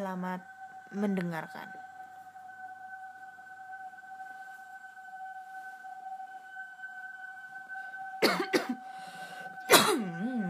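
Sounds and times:
faint steady electronic hum: 0:00.0 - 0:10.4
speech: 0:00.1 - 0:01.8
person coughing: 0:08.2 - 0:08.8, 0:09.6 - 0:10.4.

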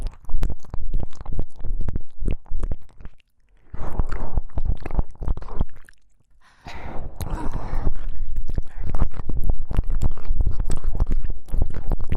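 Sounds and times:
wet ear licking: 0:00.0 - 0:12.1
soft breathy washes: 0:06.4 - 0:09.1.

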